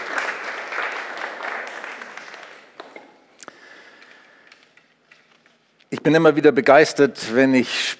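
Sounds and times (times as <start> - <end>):
audience applause: 0.0 - 3.0
speech: 5.9 - 7.9.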